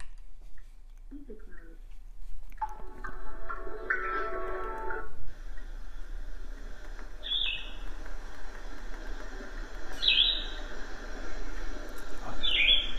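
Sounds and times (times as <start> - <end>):
steady broadband rushing noise: 2.8 - 12.9
short high bird chirps: 7.2 - 8.0, 9.9 - 10.8, 12.2 - 12.9.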